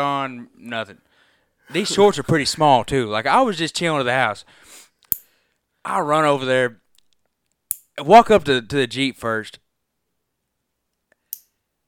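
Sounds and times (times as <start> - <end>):
speech: 0.0 - 1.1, 1.7 - 4.8, 5.8 - 6.8, 8.0 - 9.6
fingernail clipper clicks: 5.0 - 5.3, 7.7 - 7.9, 11.1 - 11.6.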